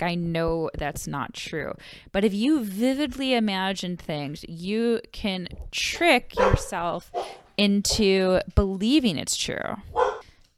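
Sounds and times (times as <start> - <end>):
speech: 0.0 - 10.2
dog barking: 6.4 - 7.4, 9.9 - 10.2.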